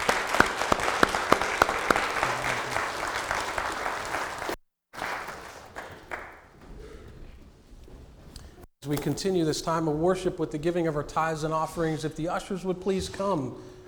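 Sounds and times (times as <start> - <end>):
church audience clapping at a worship service: 0.0 - 6.7
speech: 8.9 - 13.7.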